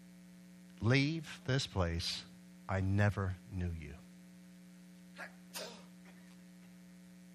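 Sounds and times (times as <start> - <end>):
steady low electrical hum: 0.0 - 7.3
speech: 0.8 - 4.0
single sneeze: 5.2 - 6.2.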